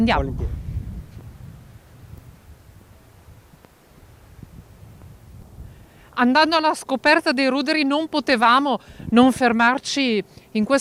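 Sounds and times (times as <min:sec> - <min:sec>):
speech: 0:00.0 - 0:00.6, 0:06.2 - 0:10.7
strong outdoor wind buffeting the microphone: 0:00.0 - 0:07.3, 0:08.7 - 0:09.7.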